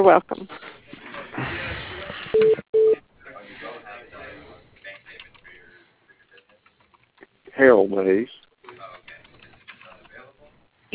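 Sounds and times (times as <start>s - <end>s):
speech: 0.0s - 0.7s, 7.6s - 8.4s
voices: 0.4s - 10.9s
telephone ringing tones on a narrow phone line: 2.4s - 3.0s.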